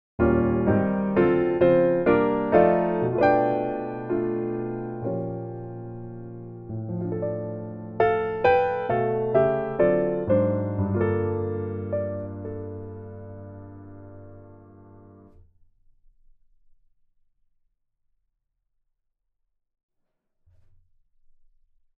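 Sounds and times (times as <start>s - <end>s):
sentimental reharmonized music: 0.2s - 15.4s.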